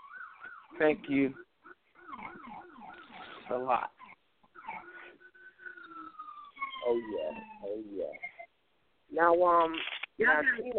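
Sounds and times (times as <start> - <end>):
fast warbling police siren yelp: 0.0 - 3.7, 4.6 - 8.1
speech: 0.8 - 1.4, 3.5 - 4.0, 6.8 - 8.3, 9.1 - 10.7.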